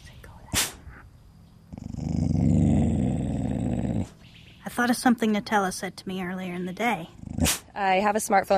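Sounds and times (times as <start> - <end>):
low rumbling dog growl: 1.7 - 4.2, 7.0 - 7.8
speech: 4.8 - 8.5.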